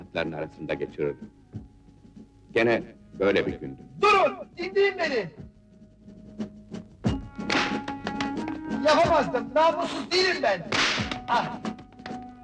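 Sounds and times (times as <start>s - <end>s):
speech: 0.1s - 1.6s, 2.5s - 5.5s, 8.8s - 11.6s
punches landing during a fistfight: 10.7s - 11.4s.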